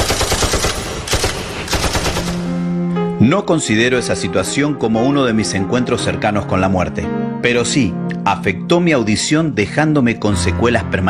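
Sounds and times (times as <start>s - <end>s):
calibre .50 machine guns firing aboard a ship: 0.0s - 2.6s
speech: 3.2s - 11.0s.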